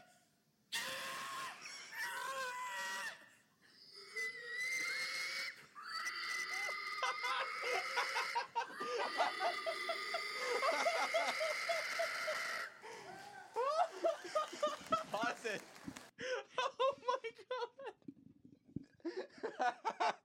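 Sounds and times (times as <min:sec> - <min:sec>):
large man making wheezing squealing pig noises like a hog call: 0:00.8 - 0:12.8
laughter: 0:06.6 - 0:18.0, 0:19.0 - 0:20.2.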